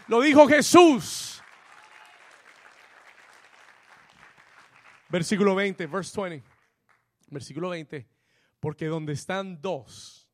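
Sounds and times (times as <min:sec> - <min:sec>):
audience applauding: 0:00.0 - 0:07.1
speech: 0:00.1 - 0:01.3, 0:05.1 - 0:06.5, 0:07.3 - 0:10.2.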